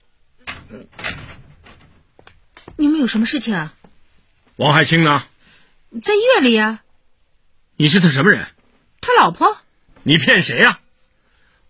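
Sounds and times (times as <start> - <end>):
door being opened: 0.4 - 2.7
speech: 0.7 - 1.2, 2.8 - 3.8, 4.6 - 5.3, 5.9 - 6.8, 7.8 - 10.8.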